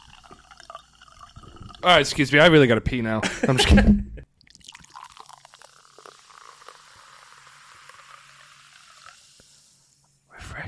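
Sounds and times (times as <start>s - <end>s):
Mountain Dew soda poured into a glass: 0.0s - 2.2s, 4.4s - 10.0s
fizzy crackling soda bubbles hissing: 0.0s - 2.2s, 4.4s - 10.0s
speech: 1.8s - 4.1s
laughter: 3.2s - 4.2s.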